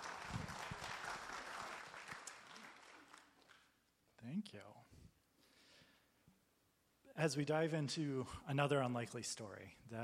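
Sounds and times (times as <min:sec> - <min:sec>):
church audience clapping: 0:00.0 - 0:03.8
speech: 0:04.3 - 0:05.0, 0:07.2 - 0:10.0.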